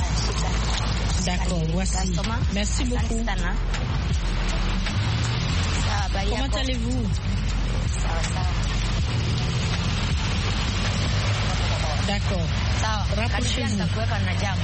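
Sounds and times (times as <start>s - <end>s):
bus engine rumble and road noise of street traffic heard from inside a bus: 0.0s - 14.6s
speech: 1.2s - 4.3s, 6.2s - 9.6s, 12.0s - 14.6s.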